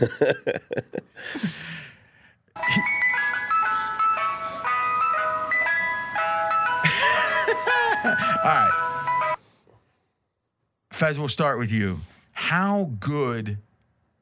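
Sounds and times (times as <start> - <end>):
laughter: 0.0 - 1.7, 2.6 - 4.0, 6.8 - 8.8
speech: 0.0 - 1.9, 11.0 - 13.7
ice cream truck music-box jingle: 2.6 - 9.4.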